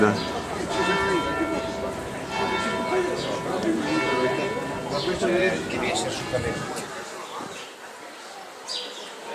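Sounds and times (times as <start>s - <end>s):
speech: 0.0s - 0.4s, 6.0s - 6.8s
church bell ringing: 0.0s - 6.7s.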